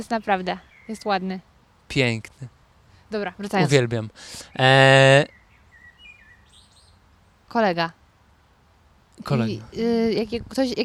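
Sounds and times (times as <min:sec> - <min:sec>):
common blackbird singing outdoors from an exposed perch: 0:00.0 - 0:01.2, 0:04.5 - 0:07.0
speech: 0:00.0 - 0:05.4, 0:07.5 - 0:08.0, 0:09.2 - 0:10.8.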